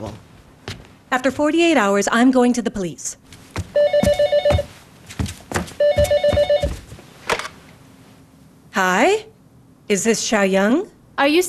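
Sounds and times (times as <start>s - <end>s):
speech: 0.0s - 0.3s, 1.1s - 3.8s, 8.8s - 9.3s, 9.9s - 11.4s
telephone ringing with rapid electronic trill: 3.8s - 4.7s, 5.8s - 6.8s.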